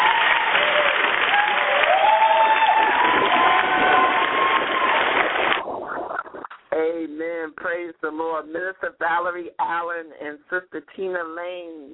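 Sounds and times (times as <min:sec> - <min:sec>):
crowd applause: 0:00.0 - 0:05.6
people cheering and whooping: 0:00.0 - 0:05.6
speech: 0:07.6 - 0:11.9.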